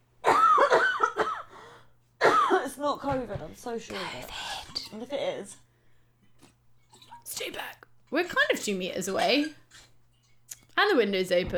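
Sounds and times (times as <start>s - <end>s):
person coughing: 0.2s - 1.5s, 2.2s - 2.7s
speech: 2.8s - 5.6s, 7.4s - 9.6s, 10.8s - 11.5s.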